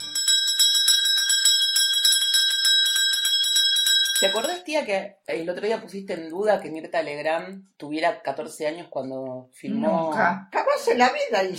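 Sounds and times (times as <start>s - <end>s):
Christmas bells chiming: 0.0s - 4.6s
speech: 4.2s - 11.5s.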